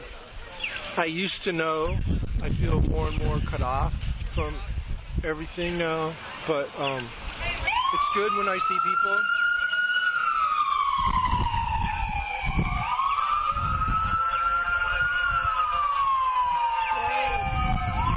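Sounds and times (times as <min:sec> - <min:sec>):
low traffic rumble: 0:00.0 - 0:18.1
speech: 0:01.0 - 0:09.4
ambulance siren wailing as it passes: 0:07.6 - 0:18.1.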